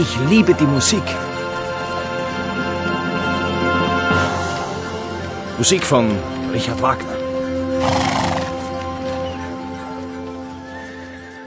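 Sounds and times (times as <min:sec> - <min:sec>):
speech: 0:00.0 - 0:01.4, 0:05.6 - 0:07.2
horse hooves clip-clopping: 0:00.0 - 0:11.4
horse pulling a horse-drawn sleigh neighing: 0:07.7 - 0:09.6.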